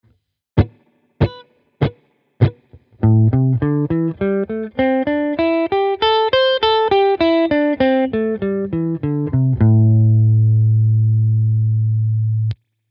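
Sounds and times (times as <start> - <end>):
blues melody in minor pentatonic scale: 0.6 - 12.6.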